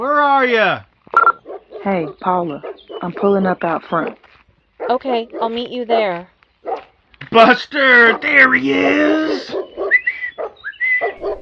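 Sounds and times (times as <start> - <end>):
speech: 0.0 - 0.9, 1.8 - 4.2, 4.9 - 6.3, 7.3 - 9.6
dog barking: 1.4 - 3.4, 4.8 - 5.7, 6.6 - 7.0, 8.0 - 11.4.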